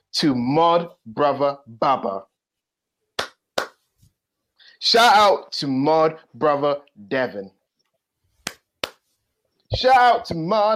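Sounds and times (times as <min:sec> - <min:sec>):
speech: 0:00.1 - 0:02.3, 0:04.8 - 0:07.6, 0:09.7 - 0:10.7
hand claps in thanks to chat moderators: 0:03.2 - 0:03.9, 0:08.4 - 0:09.1.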